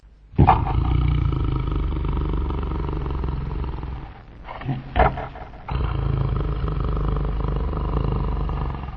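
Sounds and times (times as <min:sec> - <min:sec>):
wolf snoring loudly while asleep in a grassy meadow: 0:00.4 - 0:08.9.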